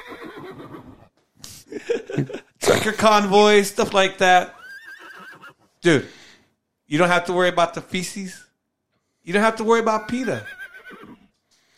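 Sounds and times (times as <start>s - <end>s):
horse neighing: 0.0s - 1.1s, 4.5s - 5.7s, 10.0s - 11.3s
speech: 1.8s - 4.6s, 5.8s - 6.2s, 6.9s - 8.4s, 9.2s - 10.6s.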